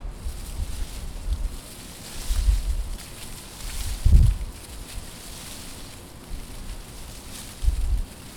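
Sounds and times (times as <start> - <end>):
leaves rustling in nature: 0.0 - 8.3.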